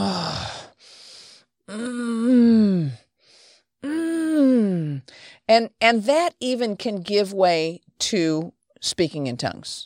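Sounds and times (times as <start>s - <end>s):
person groaning in prayer with long voiced moans: 0.0s - 0.7s, 1.7s - 3.1s, 3.8s - 5.0s
person sighing in prayer: 0.0s - 1.0s, 1.7s - 3.1s, 3.8s - 5.2s
speech: 5.5s - 9.8s.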